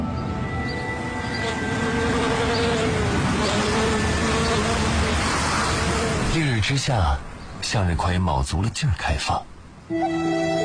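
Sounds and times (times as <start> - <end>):
beekeepers' bees buzzing in Xinjiang China: 1.0 - 6.3
speech: 6.7 - 10.6.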